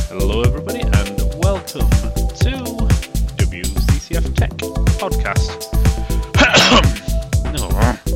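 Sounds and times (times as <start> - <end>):
man speaking: 0.1 - 5.7, 6.5 - 8.1
harsh cough: 6.3 - 8.0.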